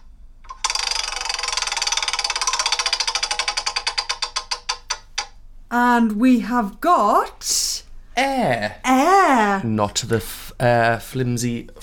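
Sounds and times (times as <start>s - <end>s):
spun prize wheel ticking as it turns slowly: 0.4s - 5.4s
speech: 5.7s - 11.8s.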